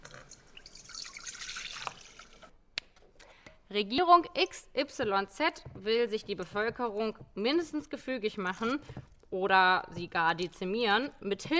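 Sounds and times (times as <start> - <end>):
water dripping and trickling: 0.0 - 2.5
speech: 3.7 - 11.5.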